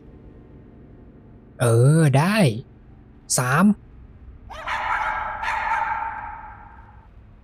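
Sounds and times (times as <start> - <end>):
speech: 1.6 - 2.7, 3.3 - 3.8
several dogs barking loudly: 4.5 - 7.0.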